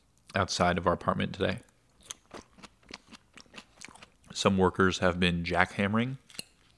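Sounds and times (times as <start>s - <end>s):
speech: 0.4s - 1.7s, 4.4s - 6.2s
chewing crunchy food: 2.0s - 4.4s.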